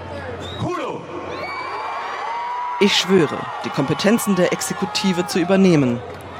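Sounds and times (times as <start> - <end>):
shrill whistles from a crowd: 0.4 - 1.7
huge crowd of thousands cheering in Venezuela: 0.7 - 6.3
speech: 2.8 - 6.2.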